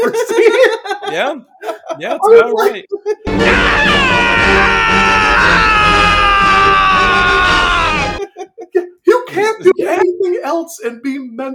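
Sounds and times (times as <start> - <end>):
speech: 0.0 - 5.6, 9.4 - 11.5
laughter: 0.0 - 10.2
man screaming loudly: 3.3 - 8.2.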